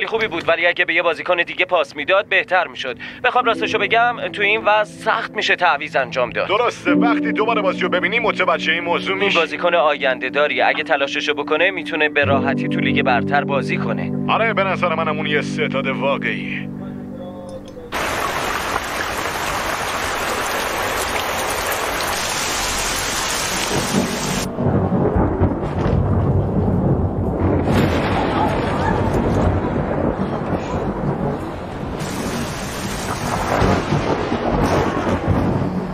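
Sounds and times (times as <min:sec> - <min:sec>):
speech: 0:00.0 - 0:16.8
deep rumbling thunder: 0:17.9 - 0:35.9
heavy rain: 0:17.9 - 0:35.9.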